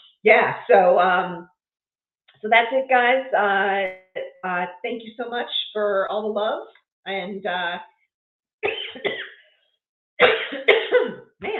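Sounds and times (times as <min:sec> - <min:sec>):
speech: 0:00.2 - 0:01.5, 0:02.4 - 0:07.9, 0:10.2 - 0:11.5
person coughing: 0:08.6 - 0:09.3, 0:10.2 - 0:11.3.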